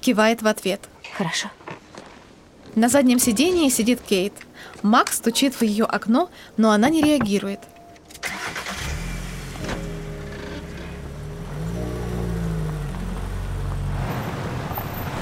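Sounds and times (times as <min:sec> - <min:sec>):
speech: 0:00.0 - 0:01.6, 0:02.8 - 0:07.7
SUV engine driving up to a house: 0:08.2 - 0:15.1.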